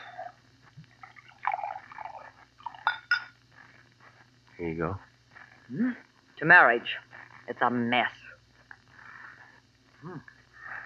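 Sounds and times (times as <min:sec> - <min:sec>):
low steady hum: 0:00.0 - 0:10.8
bourbon glugging and splashing into a glass: 0:00.9 - 0:03.3
speech: 0:04.6 - 0:05.1, 0:05.7 - 0:08.2.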